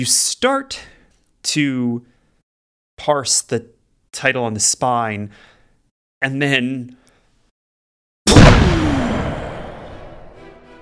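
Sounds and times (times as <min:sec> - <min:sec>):
speech: 0:00.0 - 0:02.1, 0:03.0 - 0:05.5, 0:06.2 - 0:07.0
distant explosion shaking a building: 0:08.3 - 0:10.4.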